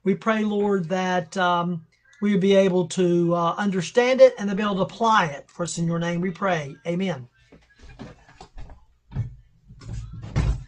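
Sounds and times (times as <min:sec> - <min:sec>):
speech: 0:00.0 - 0:07.3
dull thuds of door being pushed shut: 0:09.1 - 0:10.6.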